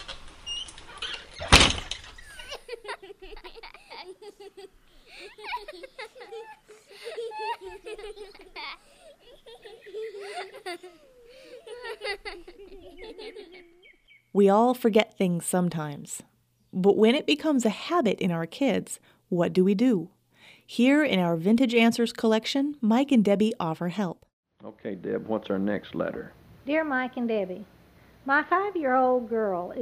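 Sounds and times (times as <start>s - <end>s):
door shutting with a firm thud: 0.0s - 2.4s
light giggly chatter in a room: 2.2s - 14.0s
speech: 14.4s - 29.8s.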